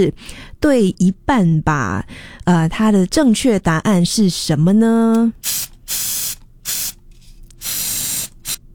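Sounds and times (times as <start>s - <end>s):
speech: 0.0s - 6.8s
spray paint can spraying in short bursts: 5.4s - 8.6s.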